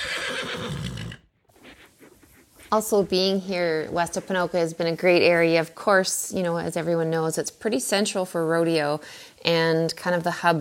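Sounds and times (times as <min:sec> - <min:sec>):
rodeo horse neighing: 0:00.0 - 0:01.3
speech: 0:02.7 - 0:10.5.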